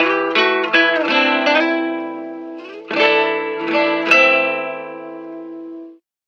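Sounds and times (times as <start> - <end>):
game over guitar ringtone on a mobile phone: 0.0 - 6.0.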